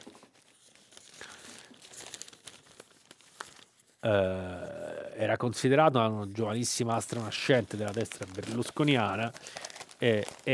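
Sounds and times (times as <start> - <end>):
large newspaper sheets rustling and crackling as they are turned: 0.0 - 4.0, 6.4 - 10.5
speech: 4.0 - 10.5.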